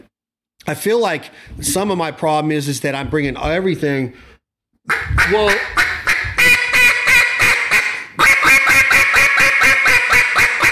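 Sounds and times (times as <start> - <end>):
speech: 0.7 - 5.8
duck call blown to imitate a hen mallard: 4.9 - 10.6.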